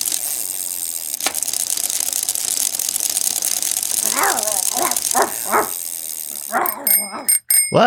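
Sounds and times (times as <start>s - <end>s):
dog barking on a walk around the block: 4.0s - 5.8s, 6.5s - 7.3s.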